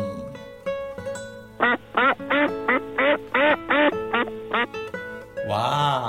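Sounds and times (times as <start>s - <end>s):
soft music: 0.0s - 6.0s
yellow duck quacking: 1.6s - 4.8s.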